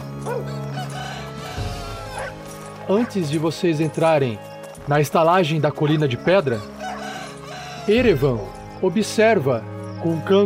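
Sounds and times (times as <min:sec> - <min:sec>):
steady droning musical background: 0:00.0 - 0:10.4
speech: 0:00.2 - 0:00.8, 0:02.9 - 0:06.8, 0:07.9 - 0:10.4
rooster crowing: 0:00.3 - 0:02.5, 0:06.6 - 0:08.0.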